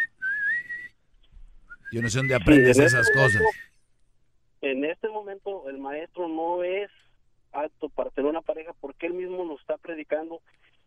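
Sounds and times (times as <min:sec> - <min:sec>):
person whistling one sustained note: 0:00.0 - 0:01.0, 0:01.7 - 0:03.8
speech: 0:01.9 - 0:03.7, 0:04.7 - 0:10.6.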